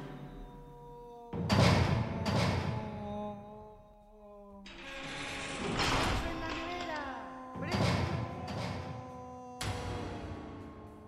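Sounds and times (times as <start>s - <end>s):
heavy metal prison isolation cell door clanging shut: 1.4s - 3.0s, 4.7s - 7.0s, 7.6s - 10.6s.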